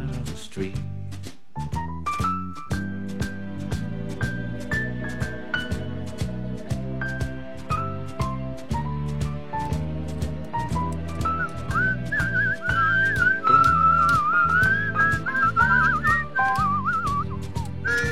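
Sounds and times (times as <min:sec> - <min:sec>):
steady rhythmic instrumental backing: 0:00.0 - 0:18.0
speech: 0:00.5 - 0:00.9
person whistling a lively wavering melody: 0:11.2 - 0:18.0.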